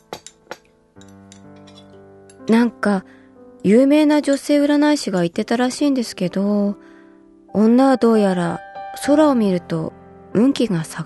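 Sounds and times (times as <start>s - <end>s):
spoon clinking against a plate of curry: 0.1s - 2.4s
speech: 1.0s - 1.2s, 2.5s - 6.8s, 7.6s - 11.0s.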